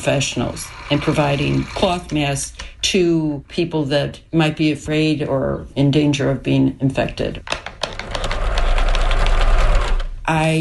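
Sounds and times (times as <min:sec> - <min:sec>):
sewing machine running while sewing cloth masks: 0:00.0 - 0:02.2, 0:08.0 - 0:10.1
speech: 0:00.0 - 0:07.7, 0:10.3 - 0:10.5.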